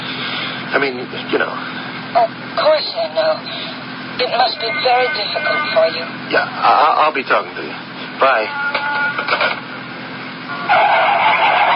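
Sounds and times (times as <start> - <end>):
road and engine hum inside a moving police car: 0.0 - 11.7
speech: 0.7 - 9.7
brief voice fragments: 2.2 - 7.6.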